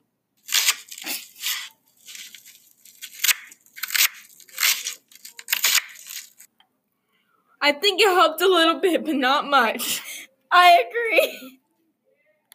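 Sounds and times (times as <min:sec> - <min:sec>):
knife cutting through a frozen vegetable: 0:00.4 - 0:06.5
speech: 0:07.7 - 0:11.6.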